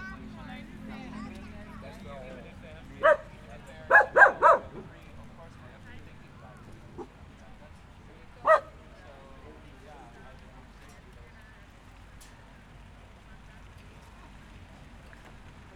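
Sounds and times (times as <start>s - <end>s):
low murmur: 0.0s - 15.7s
dog barking: 3.0s - 4.9s, 8.4s - 8.8s.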